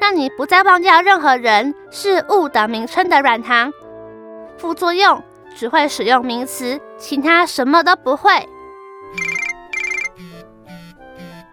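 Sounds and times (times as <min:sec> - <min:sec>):
speech: 0:00.1 - 0:03.8, 0:04.6 - 0:09.3
mobile phone ringtone: 0:09.1 - 0:10.3.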